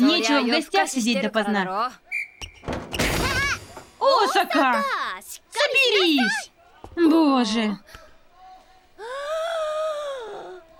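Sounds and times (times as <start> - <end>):
speech: 0.0 - 2.0, 4.0 - 8.0
big drawn-out yawn: 9.0 - 10.6.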